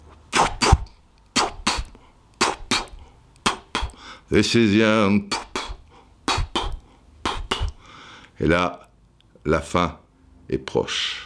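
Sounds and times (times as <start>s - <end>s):
voice imitating slow-motion helicopter rotor blades with breathy whooshing chuffs: 1.4s - 4.0s, 5.2s - 7.8s
speech: 4.3s - 5.4s, 8.4s - 8.8s, 9.4s - 11.2s.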